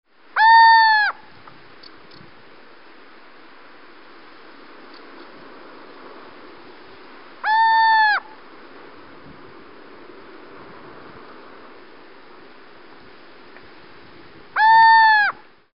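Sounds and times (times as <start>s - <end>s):
little owl calling: 0.4s - 1.2s, 7.4s - 8.4s, 14.6s - 15.4s.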